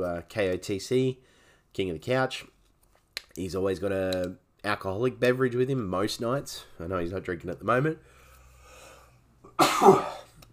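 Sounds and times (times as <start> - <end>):
speech: 0.0 - 2.5, 3.4 - 8.1, 9.6 - 10.2
sneeze: 9.6 - 10.3.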